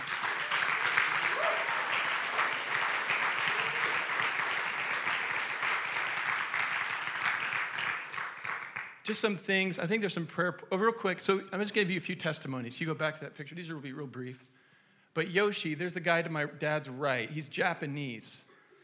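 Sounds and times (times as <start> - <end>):
audience clapping hands in applause: 0.0 - 9.0
speech: 9.1 - 14.6, 15.2 - 18.5.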